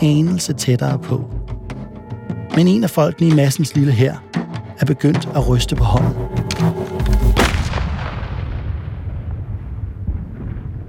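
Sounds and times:
speech: 0:00.0 - 0:01.6, 0:02.6 - 0:06.4
deep booming echo of gunshot: 0:07.1 - 0:10.8
single loud gunshot through trees: 0:07.2 - 0:10.8.

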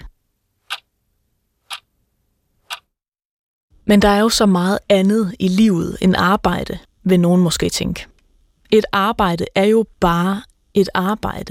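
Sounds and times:
clock ticking: 0:00.7 - 0:00.9, 0:01.7 - 0:01.9, 0:02.7 - 0:02.9
speech: 0:03.9 - 0:08.1, 0:08.7 - 0:11.5.

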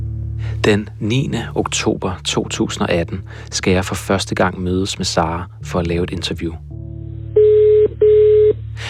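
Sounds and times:
speech: 0:00.6 - 0:06.8
electronic telephone dialing tones: 0:07.4 - 0:08.6.

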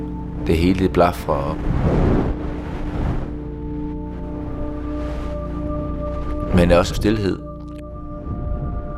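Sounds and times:
speech: 0:00.5 - 0:02.4, 0:06.5 - 0:07.4
violent storm wind whooshing: 0:01.5 - 0:05.4, 0:08.2 - 0:08.9.

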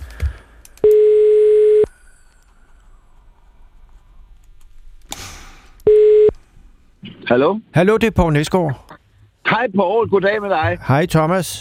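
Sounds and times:
telephone ringback tone on an outgoing call: 0:00.8 - 0:01.9, 0:05.9 - 0:06.3
speech: 0:07.3 - 0:08.9, 0:09.6 - 0:11.6.

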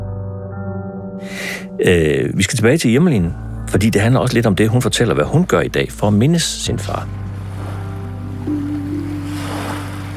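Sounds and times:
speech: 0:01.2 - 0:07.2
sea waves washing onto the shore: 0:05.4 - 0:10.1.

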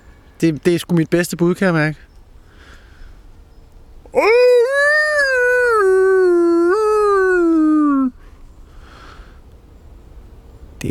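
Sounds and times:
speech: 0:00.4 - 0:02.1, 0:04.1 - 0:04.5
person imitating a wolf howl in a forest: 0:04.1 - 0:08.2.

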